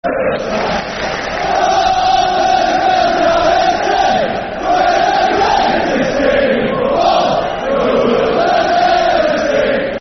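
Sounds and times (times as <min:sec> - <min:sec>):
football crowd chanting: 0:00.0 - 0:09.9.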